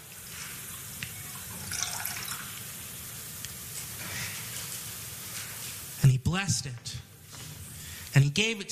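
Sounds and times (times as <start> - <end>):
liquid pouring into a cup: 0.7 - 2.7
speech: 6.0 - 7.1, 8.2 - 8.7.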